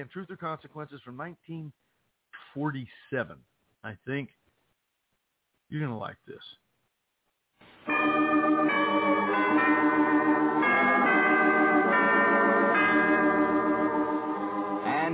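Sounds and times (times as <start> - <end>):
speech: 0.0 - 1.9, 2.5 - 4.4, 5.7 - 6.6
peal of church bells ringing on an old 1947 recording: 7.9 - 15.1.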